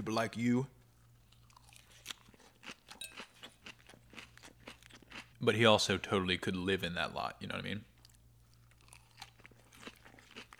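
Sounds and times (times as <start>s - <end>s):
speech: 0.0s - 0.8s, 5.4s - 7.9s
low hum: 0.0s - 10.5s
crunchy chewing of salad: 0.8s - 5.5s, 7.9s - 10.5s.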